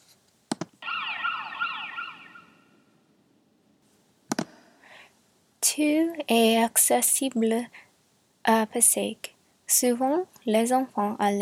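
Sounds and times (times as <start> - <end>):
sharp clicks or knocks: 0.5 - 0.8, 4.3 - 4.6
ambulance siren wailing with layered warbling tones: 0.8 - 2.8
speech: 5.8 - 7.8, 8.4 - 11.4.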